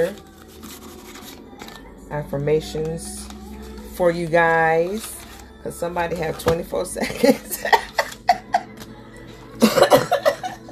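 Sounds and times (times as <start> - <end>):
speech: 0.0 - 0.3, 2.1 - 3.2, 4.0 - 7.9
laughter: 7.0 - 8.8, 9.6 - 10.7
person coughing: 9.6 - 10.6.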